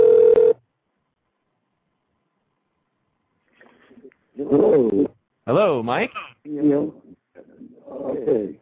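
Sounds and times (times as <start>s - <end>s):
telephone call ringing while connecting: 0.0s - 0.6s
speech: 4.6s - 7.0s, 8.2s - 8.6s.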